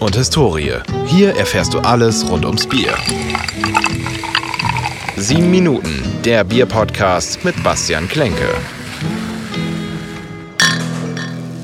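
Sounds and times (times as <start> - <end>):
speech: 0.0 - 4.2, 5.2 - 8.8
beer glasses clinking in a toast in a small beer cellar: 2.0 - 5.9, 10.6 - 11.6.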